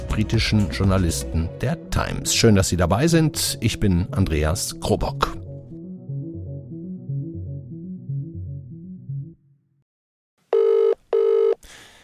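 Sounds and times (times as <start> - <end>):
low rhythmic musical passage: 0.0 - 9.4
speech: 0.2 - 5.4
British telephone ringback tone: 10.5 - 11.6.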